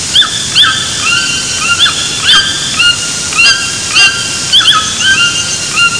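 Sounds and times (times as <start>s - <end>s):
toucan Ramphastidae calling: 0.0s - 5.9s.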